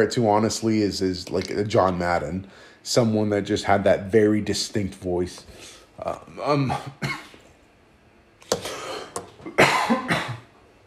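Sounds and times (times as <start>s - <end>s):
speech: 0.0s - 7.2s
harsh raspy coughing fit: 6.6s - 7.4s, 8.5s - 10.5s.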